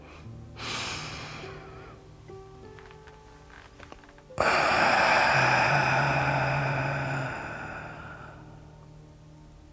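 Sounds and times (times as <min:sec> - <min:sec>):
deep breathing in a guided breathing exercise: 0:00.0 - 0:02.1, 0:04.4 - 0:08.8.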